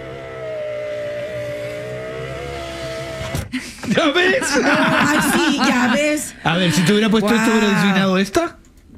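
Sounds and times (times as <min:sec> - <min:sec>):
car engine revving: 0:00.0 - 0:03.3
laughter: 0:03.5 - 0:08.0
speech: 0:03.5 - 0:08.6.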